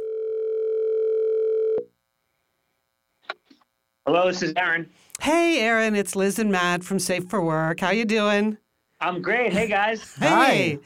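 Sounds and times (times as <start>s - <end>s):
telephone dial tone: 0.0s - 1.8s
speech: 4.1s - 10.8s.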